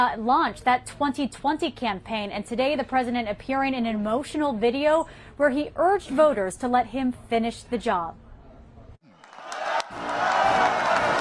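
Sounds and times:
speech: 0:00.0 - 0:08.2
large union crowd cheering and shouting to welcome a speaker: 0:09.0 - 0:11.1.

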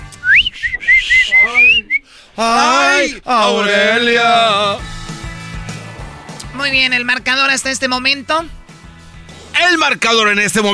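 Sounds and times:
person whistling a short lilting tune: 0:00.1 - 0:02.1
speech: 0:02.4 - 0:04.9, 0:06.6 - 0:08.6, 0:09.6 - 0:10.7.

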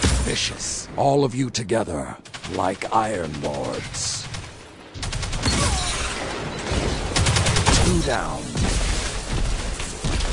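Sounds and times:
speech: 0:00.3 - 0:04.2, 0:08.0 - 0:08.8
sniper rifle gunfire in a video game zone-capture match: 0:02.3 - 0:10.3.

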